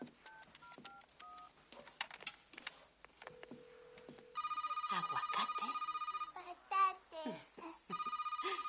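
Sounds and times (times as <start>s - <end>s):
kitchen telephone ringing with a rapid pulsing electronic trill: 4.3s - 6.4s, 7.9s - 8.6s
speech: 4.9s - 5.9s, 7.2s - 7.4s.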